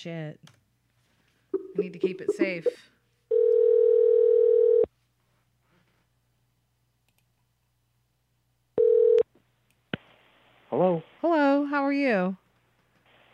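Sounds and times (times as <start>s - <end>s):
speech: 0.0s - 0.6s, 1.8s - 2.9s, 10.7s - 12.4s
telephone dial tone: 3.3s - 4.9s, 8.8s - 9.2s
faint clicks: 7.0s - 7.3s.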